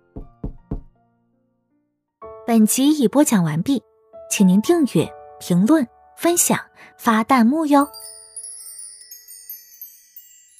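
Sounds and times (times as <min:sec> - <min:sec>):
knocking on the door of a restaurant's private room: 0:00.1 - 0:01.0
speech: 0:02.6 - 0:08.2.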